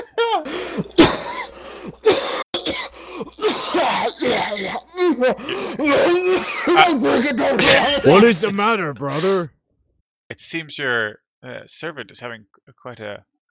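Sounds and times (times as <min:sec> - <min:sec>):
person coughing uncontrollably: 0:00.5 - 0:09.5
speech: 0:04.2 - 0:09.6, 0:10.3 - 0:13.3.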